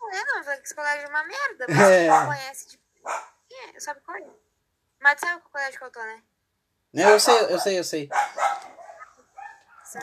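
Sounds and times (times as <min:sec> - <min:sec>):
speech: 0:00.2 - 0:04.4, 0:05.0 - 0:06.3, 0:06.9 - 0:08.8
dog barking: 0:01.8 - 0:02.4, 0:03.0 - 0:03.4, 0:07.0 - 0:10.0.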